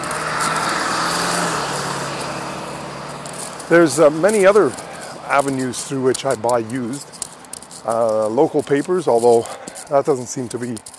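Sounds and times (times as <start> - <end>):
bus driving past: 0.0 - 7.8
speech: 3.7 - 7.2, 7.8 - 10.9.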